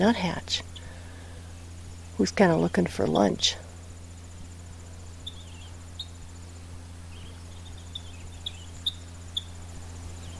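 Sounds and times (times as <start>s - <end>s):
speech: 0.0s - 0.7s, 2.2s - 3.6s
faint continuous insect-like trill: 0.0s - 10.3s
steady low hum: 0.0s - 10.3s
purple finch kip calls: 5.2s - 6.5s, 7.1s - 9.6s.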